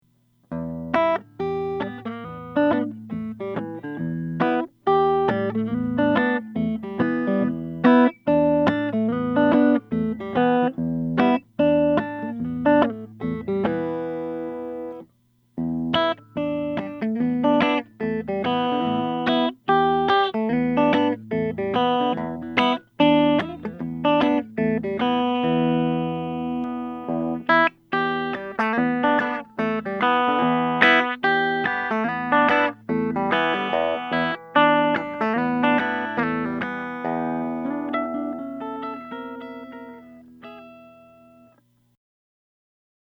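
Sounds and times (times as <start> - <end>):
semi-hollow electric guitar playing: 0.5 - 41.7.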